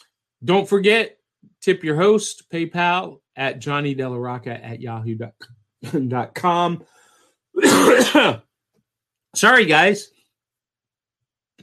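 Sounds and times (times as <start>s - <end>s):
speech: 0.4s - 7.0s, 7.6s - 8.4s, 9.3s - 10.2s
rough throaty cough: 7.6s - 8.4s.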